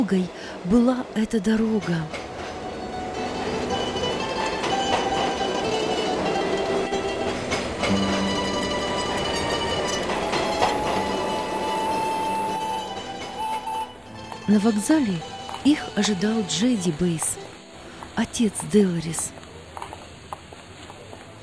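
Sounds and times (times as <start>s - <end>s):
speech: 0.0s - 2.2s, 14.5s - 17.4s, 18.2s - 19.4s
train travelling on rails: 0.0s - 21.4s
train wheel squeals: 6.8s - 16.5s.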